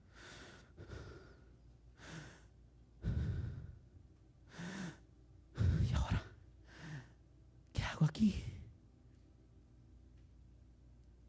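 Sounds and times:
heavy breathing: 0.0 - 3.8, 4.5 - 7.2
speech: 8.1 - 8.6.

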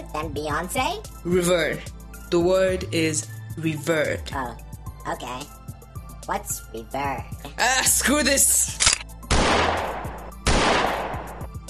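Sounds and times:
speech: 0.1 - 5.6, 6.3 - 8.8
gunshots with decay: 9.3 - 11.4.

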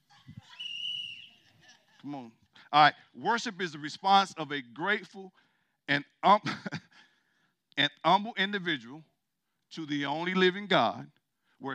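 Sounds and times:
laughter: 0.0 - 2.5, 6.4 - 7.0
high-pitched whistle blast: 0.4 - 1.4
speech: 2.0 - 6.7, 7.8 - 9.1, 9.7 - 11.7.

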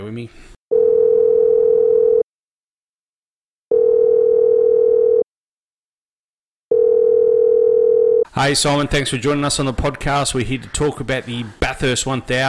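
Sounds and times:
speech: 0.1 - 0.6, 8.4 - 12.4
steady electronic telephone tone while placing a call: 0.7 - 2.3, 3.7 - 5.3, 6.7 - 8.3.

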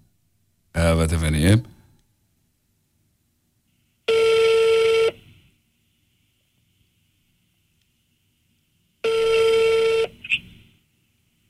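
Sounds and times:
speech: 0.9 - 1.7
ringback tones of an outgoing phone call: 4.1 - 5.2, 9.0 - 10.2.

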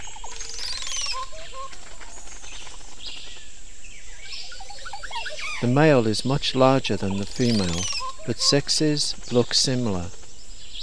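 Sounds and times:
Montezuma oropendola gurgling call: 0.0 - 3.3, 4.2 - 10.4
Montezuma oropendola soft chirps: 0.0 - 10.8
outdoor noise: 0.0 - 10.8
speech: 5.6 - 10.2.

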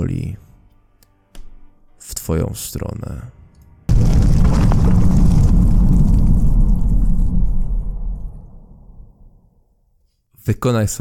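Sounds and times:
speech: 0.0 - 0.4, 2.3 - 3.4, 10.4 - 11.0
wall cracking from an explosion: 3.9 - 9.4
explosion shaking a building: 3.9 - 9.5
heavy sustained rumble: 3.9 - 9.5.

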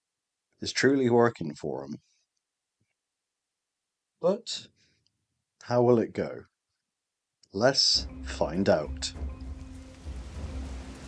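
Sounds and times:
speech: 0.6 - 2.1, 4.2 - 4.8, 5.6 - 6.5, 7.5 - 9.3
light rain pattering outside in humid air: 8.0 - 11.0.

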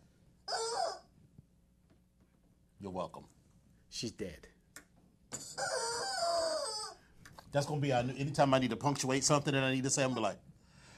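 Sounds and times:
chicken squawking and crowing: 0.4 - 1.2, 5.4 - 7.2
speech: 2.8 - 4.6, 7.5 - 10.5.

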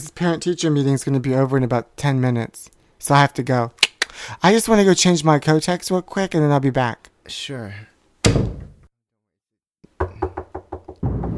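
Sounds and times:
speech: 0.0 - 8.5
heavy thud: 8.2 - 8.8, 10.9 - 11.3
firm knocking on a door: 10.0 - 11.3.

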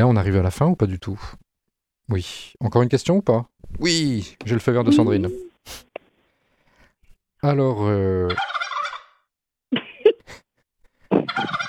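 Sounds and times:
speech: 0.0 - 1.4, 2.1 - 5.9, 7.4 - 8.5
turkey gobbling: 8.4 - 9.2.

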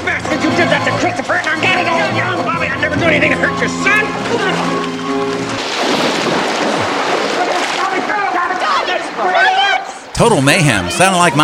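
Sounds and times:
people fighting splashing in pool water: 0.0 - 11.4
speech: 3.1 - 5.0, 10.2 - 11.4
person shouting: 8.6 - 11.4.

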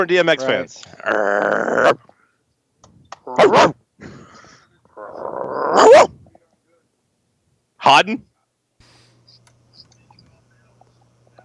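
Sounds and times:
speech: 0.0 - 2.1, 3.3 - 4.1, 7.9 - 8.3
person imitating a barking dog: 0.9 - 2.1, 3.2 - 3.8, 5.0 - 6.3.

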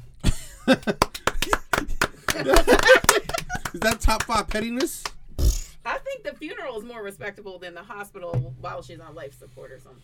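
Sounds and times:
people laughing: 0.6 - 5.0
speech: 0.7 - 1.6, 2.4 - 3.0, 3.8 - 5.1, 6.7 - 10.0
hands clapping in applause: 0.7 - 5.2.

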